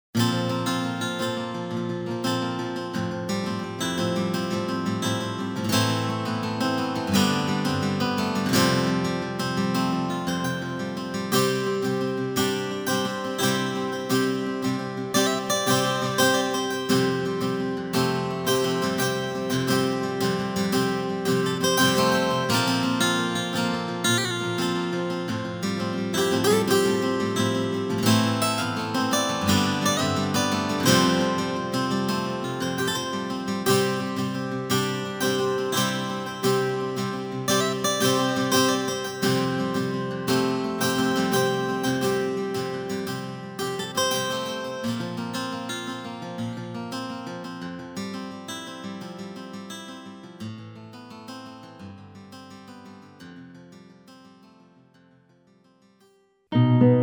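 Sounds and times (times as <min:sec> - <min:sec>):
guitars: 0:00.2 - 0:55.1, 0:56.5 - 0:57.0.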